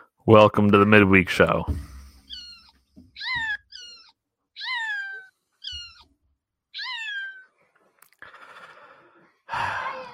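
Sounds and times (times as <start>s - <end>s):
speech: 0.3s - 1.9s
hidden cat meowing: 2.2s - 6.1s, 6.7s - 7.6s
rough breathy bursts: 8.2s - 10.1s.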